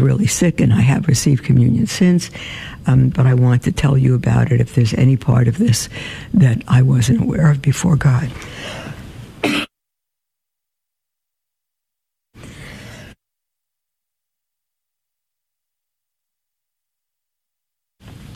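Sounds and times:
speech: 0.0s - 8.8s
person clearing throat: 9.4s - 9.7s
person coughing: 9.4s - 9.7s.

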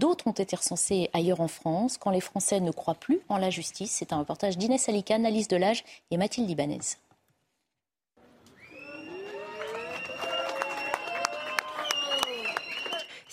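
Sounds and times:
speech: 0.0s - 7.0s
crowd of supporters clapping outside a courthouse: 8.7s - 13.3s.

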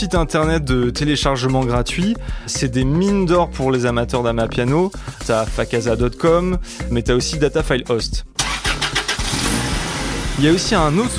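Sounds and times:
speech: 0.0s - 8.3s, 10.4s - 11.1s
panel van minibus engine cranking and starting into idle: 8.4s - 11.1s.

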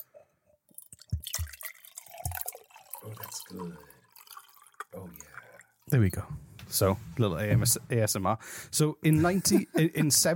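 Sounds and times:
water poured into a glass: 0.7s - 6.0s
speech: 3.0s - 4.0s, 5.9s - 10.3s
laughter: 9.1s - 10.3s.

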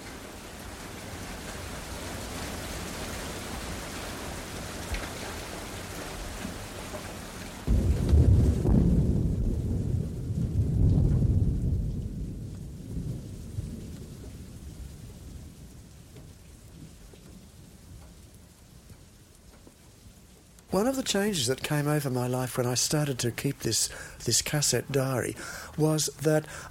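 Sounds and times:
steady rain hissing: 0.0s - 26.6s
deep thunder rumbling: 7.6s - 17.5s, 23.9s - 26.6s
speech: 20.7s - 26.6s.

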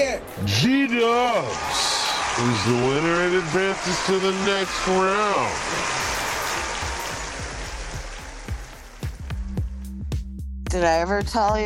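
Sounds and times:
speech: 0.3s - 6.0s, 10.8s - 11.6s
dense crowd applause: 0.5s - 9.8s
sharp louder claps: 1.5s - 9.8s.

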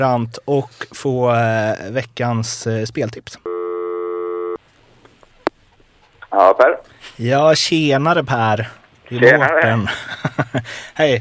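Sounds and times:
speech: 0.0s - 3.5s, 6.3s - 11.1s
quiet telephone line noise: 3.4s - 6.9s, 8.9s - 9.8s
telephone ringback tone as a call is placed: 3.5s - 4.6s
laughter: 9.5s - 10.8s.

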